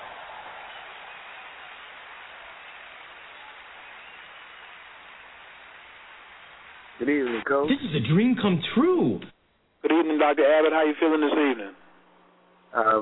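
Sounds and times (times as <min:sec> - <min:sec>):
audience clapping to welcome a speaker: 0:00.0 - 0:07.4
speech: 0:07.0 - 0:09.4, 0:10.0 - 0:11.8, 0:12.7 - 0:12.9.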